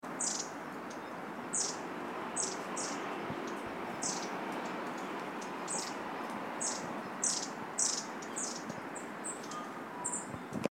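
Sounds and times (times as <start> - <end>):
long-tailed tit calling: 0.2 - 6.0, 6.6 - 10.4.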